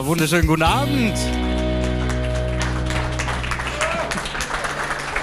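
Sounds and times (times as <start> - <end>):
speech: 0.1 - 1.4
live audience applause: 1.4 - 5.1.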